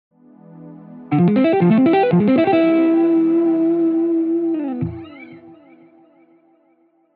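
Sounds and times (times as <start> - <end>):
harmonic major scale of C exercise: 1.1 - 6.0.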